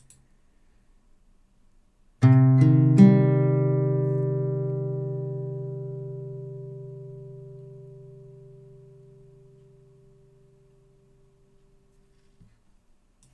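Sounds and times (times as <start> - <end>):
C minor guitar chord: 2.2 - 11.8.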